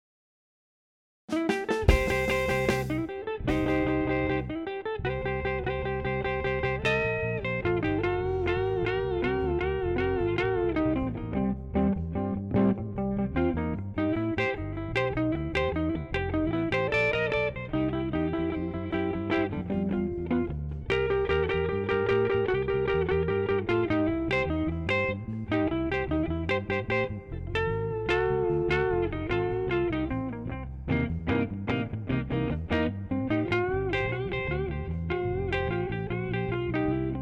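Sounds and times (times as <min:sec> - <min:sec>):
blues music without drums: 0:01.3 - 0:37.2.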